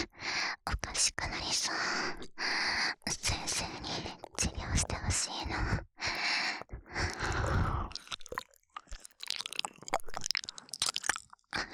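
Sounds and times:
breathing: 0:00.1 - 0:00.6, 0:01.7 - 0:03.0, 0:05.6 - 0:08.0
wet mouth sounds of licking and nibbling an ear: 0:03.2 - 0:11.7.

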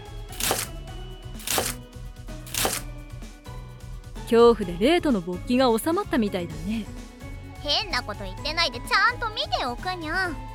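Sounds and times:
soft music: 0:00.0 - 0:10.5
knife chopping mushroom into bite-sized pieces: 0:00.4 - 0:00.7, 0:01.4 - 0:01.8, 0:02.5 - 0:02.9
speech: 0:04.3 - 0:07.0, 0:07.6 - 0:10.5.

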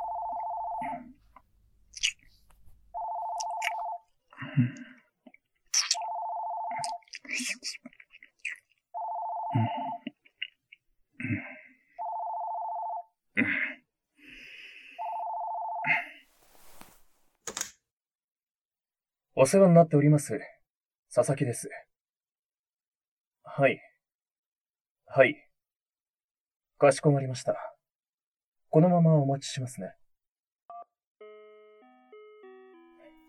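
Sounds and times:
telephone ringing with an incoming call: 0:00.0 - 0:01.2, 0:02.9 - 0:04.1, 0:06.0 - 0:06.9, 0:09.0 - 0:10.0, 0:12.0 - 0:13.1, 0:15.0 - 0:16.0
speech: 0:04.6 - 0:04.9, 0:19.4 - 0:20.5, 0:21.2 - 0:21.9, 0:23.6 - 0:23.9, 0:25.2 - 0:25.4, 0:26.8 - 0:27.7, 0:28.7 - 0:30.0
rustling movement: 0:16.3 - 0:17.4.

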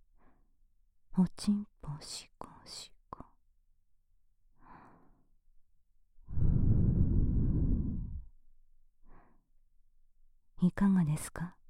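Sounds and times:
soft human breathing: 0:00.2 - 0:00.5, 0:04.6 - 0:05.3, 0:06.3 - 0:08.3, 0:09.0 - 0:09.5
speech: 0:01.2 - 0:03.0, 0:10.6 - 0:11.6.

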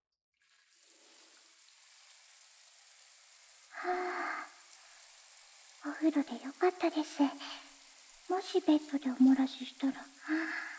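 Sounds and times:
shower spraying water in a bath: 0:00.4 - 0:10.7
speech: 0:06.0 - 0:07.7, 0:08.3 - 0:10.6.

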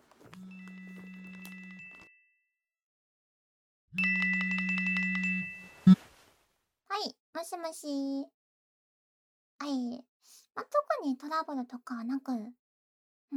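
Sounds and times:
phone ringtone ringing in electronic buzzing bursts: 0:00.4 - 0:02.4, 0:04.0 - 0:06.0
speech: 0:07.0 - 0:08.4, 0:09.6 - 0:12.6.

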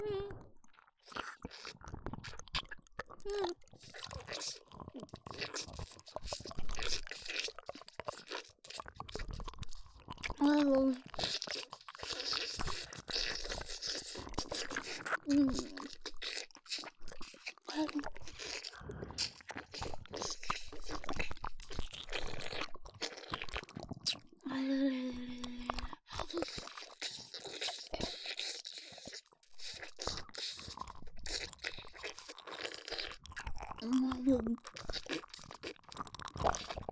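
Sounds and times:
crunchy food being chewed: 0:00.0 - 0:36.9
soft vocal murmurs: 0:24.4 - 0:26.4, 0:33.8 - 0:34.6.

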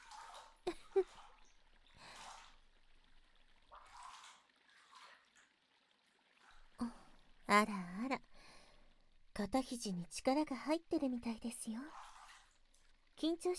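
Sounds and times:
hot water poured over a person's body: 0:00.0 - 0:07.3, 0:11.8 - 0:13.2
speech: 0:07.5 - 0:08.2, 0:09.4 - 0:12.0, 0:13.2 - 0:13.5.

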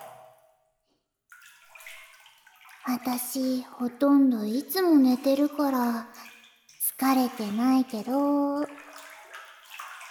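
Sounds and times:
bathwater sloshing in a bathtub: 0:00.0 - 0:10.0
speech: 0:02.8 - 0:06.3, 0:07.0 - 0:08.8.

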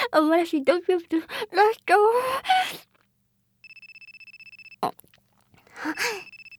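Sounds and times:
speech: 0:00.2 - 0:02.8
telephone ringing with electronic trill: 0:03.7 - 0:04.8, 0:06.2 - 0:06.5.

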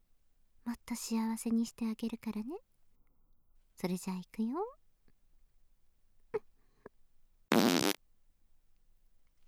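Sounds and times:
speech: 0:00.7 - 0:02.7, 0:03.8 - 0:04.8
loud buzzy fart: 0:07.5 - 0:08.0.

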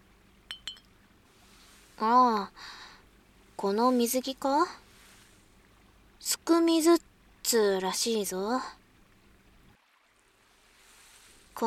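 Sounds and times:
glass clinks of two people toasting with ramune soda: 0:00.5 - 0:01.0
speech: 0:02.0 - 0:02.8, 0:03.6 - 0:04.8, 0:06.2 - 0:08.8.

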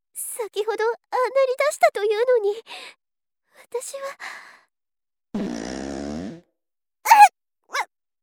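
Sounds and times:
speech: 0:00.4 - 0:03.0, 0:03.6 - 0:04.6, 0:05.3 - 0:05.8
fart: 0:05.4 - 0:06.5.

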